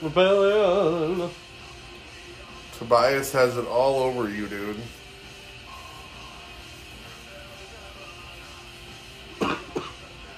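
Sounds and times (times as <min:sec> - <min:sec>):
speech: 0:00.0 - 0:01.5, 0:02.8 - 0:05.0
person coughing: 0:09.3 - 0:10.2.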